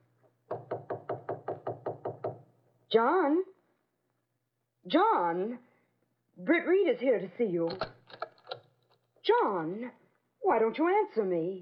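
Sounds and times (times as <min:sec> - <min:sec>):
firm knuckle raps on a study door: 0:00.5 - 0:02.5
speech: 0:02.9 - 0:03.5, 0:04.8 - 0:05.7, 0:06.4 - 0:08.0, 0:09.3 - 0:11.5.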